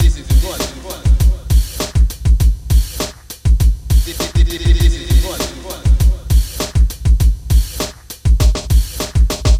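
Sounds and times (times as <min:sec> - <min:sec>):
vocals: 0:00.0 - 0:03.0, 0:03.8 - 0:07.8
drums: 0:00.0 - 0:09.5.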